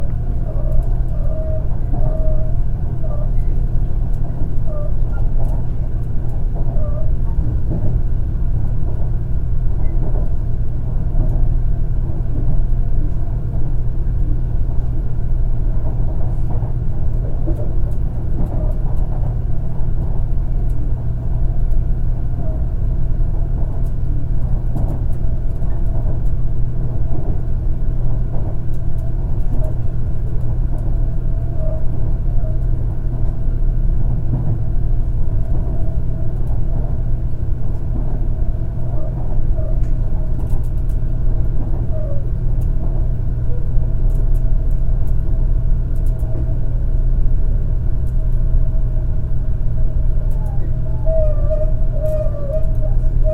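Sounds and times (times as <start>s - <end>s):
bullet train interior rumble: 0.0s - 53.3s.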